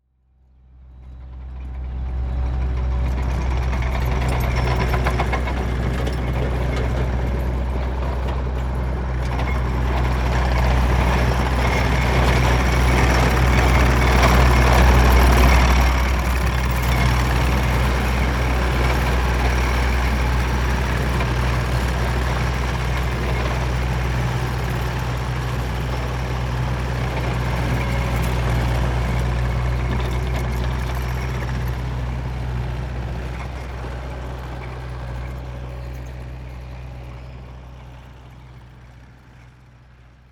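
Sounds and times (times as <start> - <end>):
tractor running: 0.7 - 40.3.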